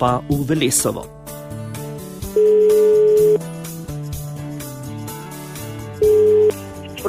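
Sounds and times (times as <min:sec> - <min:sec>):
speech: 0:00.0 - 0:01.3
soft music: 0:00.0 - 0:07.0
telephone ringback tone of an outgoing call: 0:02.4 - 0:03.4, 0:06.0 - 0:06.6.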